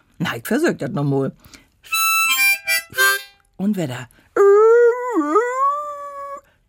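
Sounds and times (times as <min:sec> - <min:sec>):
speech: 0:00.2 - 0:02.0, 0:03.6 - 0:04.5
dog howling: 0:04.4 - 0:06.4.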